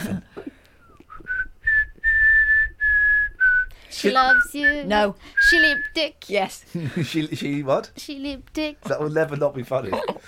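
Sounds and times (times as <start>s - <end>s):
person whistling a tune during a whistling game: 0.8s - 6.0s
speech: 4.0s - 10.2s.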